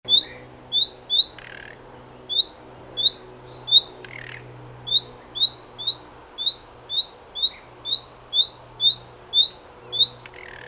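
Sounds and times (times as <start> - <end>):
common nightingale Luscinia megarhynchos calling: 0.1 - 10.6.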